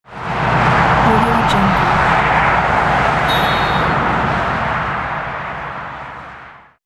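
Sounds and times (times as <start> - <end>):
speedway traffic of cars and trucks: 0.1 - 6.8
car and truck horn blast: 3.2 - 4.9.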